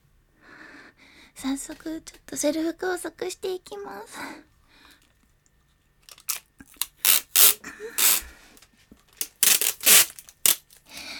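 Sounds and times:
speech: 1.4 - 4.5
vinyl tape being pulled off the roll and torn: 6.1 - 8.2, 9.2 - 10.9.

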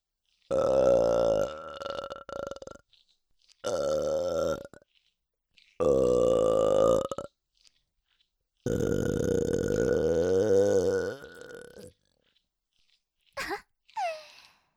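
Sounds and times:
person burping loudly: 0.5 - 2.8, 3.6 - 4.8, 5.8 - 7.3, 8.7 - 11.9, 13.4 - 14.3.

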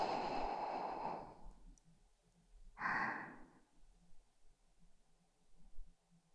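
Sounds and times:
boy breathing slowly while drifting toward sleep: 0.0 - 1.6, 2.8 - 3.7.

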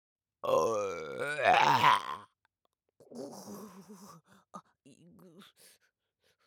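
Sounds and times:
person burping: 0.4 - 2.3.

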